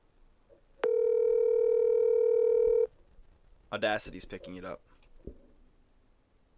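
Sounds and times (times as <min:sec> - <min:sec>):
telephone ringing tone: 0:00.8 - 0:02.9
speech: 0:03.7 - 0:05.4.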